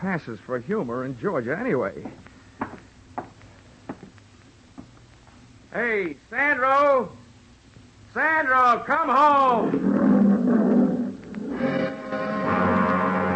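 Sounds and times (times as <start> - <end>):
speech: 0.0 - 2.3, 5.8 - 7.2, 8.2 - 9.8
lion roaring: 9.6 - 13.2.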